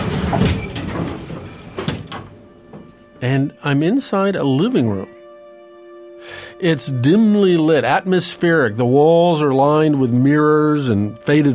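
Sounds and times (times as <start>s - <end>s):
elevator doors sliding open: 0.0s - 3.0s
speech: 3.2s - 5.2s, 6.6s - 11.5s.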